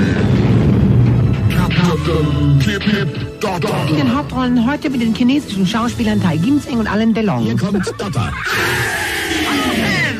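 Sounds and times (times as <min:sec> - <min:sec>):
deep big bang explosion sound effect: 0:00.0 - 0:01.7
speech: 0:02.1 - 0:09.1
laughter: 0:07.5 - 0:08.8.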